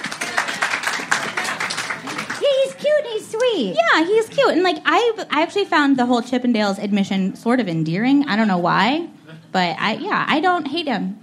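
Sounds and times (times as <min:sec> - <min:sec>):
small group clapping: 0:00.0 - 0:03.6
speech: 0:03.6 - 0:11.2.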